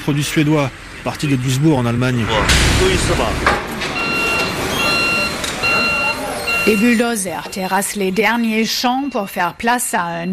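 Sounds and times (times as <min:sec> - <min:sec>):
speech: 0:00.0 - 0:04.0, 0:06.6 - 0:10.3
rumbling truck engine: 0:00.0 - 0:08.2
brief indistinct voices: 0:00.0 - 0:10.3
outdoor noise: 0:00.0 - 0:10.3
truck reversing alarm beeps: 0:04.0 - 0:10.3.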